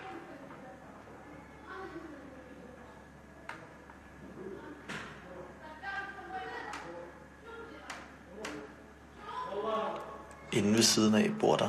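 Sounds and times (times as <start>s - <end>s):
muffled shouting and raised voices through a wall from the next flat: 4.3s - 10.7s
speech: 10.6s - 11.6s.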